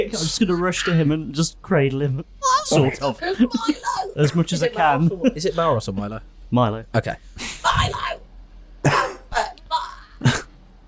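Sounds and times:
speech: 0:00.0 - 0:08.2
harsh raspy coughing: 0:08.8 - 0:09.6, 0:10.2 - 0:10.6.

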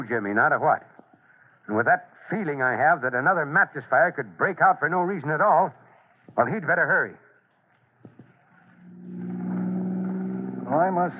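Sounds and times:
speech: 0:00.0 - 0:01.0, 0:01.7 - 0:07.2, 0:10.7 - 0:11.1
car engine roaring as it speeds up: 0:08.6 - 0:11.1.

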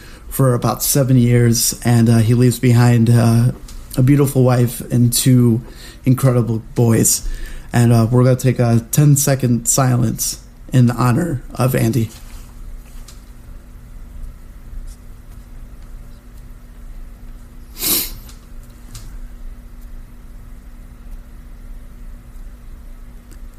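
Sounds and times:
low room hum: 0:00.0 - 0:23.5
speech: 0:00.4 - 0:12.2
person sniffling: 0:17.7 - 0:18.3.

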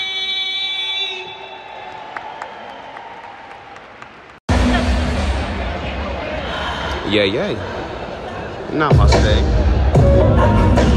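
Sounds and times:
concert audience applause: 0:01.6 - 0:04.4
crowd murmuring: 0:04.5 - 0:10.9
speech: 0:07.1 - 0:07.8, 0:08.7 - 0:10.6.

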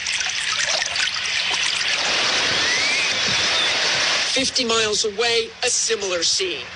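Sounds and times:
steady rushing river water: 0:00.0 - 0:04.6
speech: 0:04.4 - 0:06.7.

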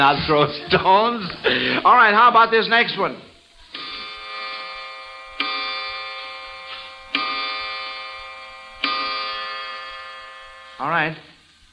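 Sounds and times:
laughter: 0:00.0 - 0:02.1
speech: 0:00.0 - 0:03.3, 0:10.8 - 0:11.3
clock striking deep resonant bell tones: 0:03.8 - 0:10.8.

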